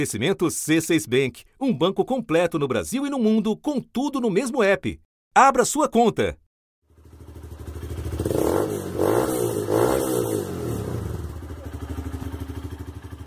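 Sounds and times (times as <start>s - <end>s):
speech: 0.0s - 6.4s
motorcycle engine on the street idling and revving: 6.8s - 13.2s.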